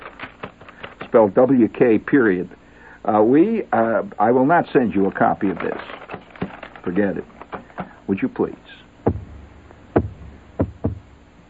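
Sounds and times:
low hum: 0.0 - 11.4
speech: 1.1 - 7.3, 8.1 - 8.8
knocking on a hard surface: 9.1 - 9.3, 10.0 - 11.1.

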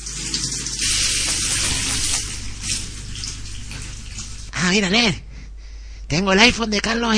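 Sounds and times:
shower water running: 0.0 - 4.6
speech: 4.6 - 5.2, 6.1 - 7.1.

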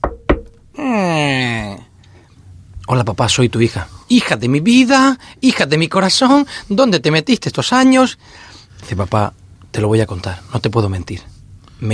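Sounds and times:
knuckles rapping on a door: 0.0 - 0.7
speech: 2.9 - 11.9.

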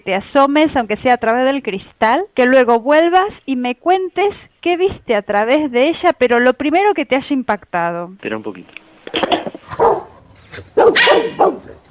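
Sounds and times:
speech: 0.0 - 11.8
dog barking: 9.7 - 11.8.

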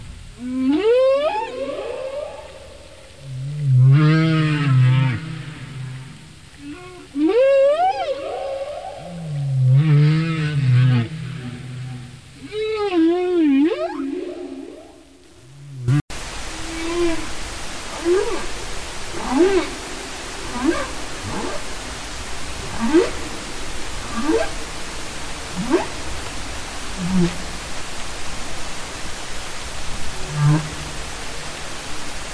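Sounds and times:
humpback whale song: 0.4 - 24.6, 25.5 - 26.2, 26.9 - 27.5, 30.2 - 31.5.

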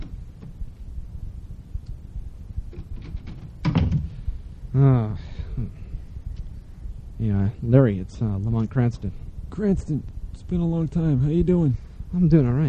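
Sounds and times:
low steady rumble: 0.0 - 12.6
door opening with a heavy clunk: 2.7 - 4.2
speech: 4.8 - 5.8, 7.2 - 12.6.

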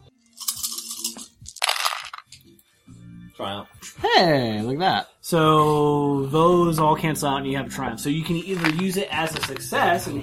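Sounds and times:
tabletop dice clattering and tumbling across a hard surface: 0.4 - 2.4, 8.4 - 9.8
speech: 3.4 - 10.2.

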